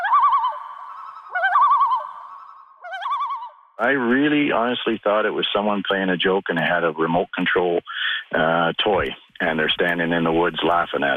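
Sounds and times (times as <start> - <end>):
loon calling while swimming in Alberta: 0.0 - 4.2
speech: 3.8 - 11.1.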